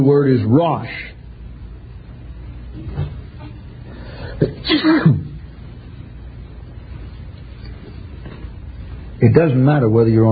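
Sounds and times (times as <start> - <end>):
speech: 0.0 - 1.2, 4.4 - 5.3, 9.2 - 10.3
faint room noise: 0.0 - 10.3
single sharp human sneeze: 4.2 - 5.3.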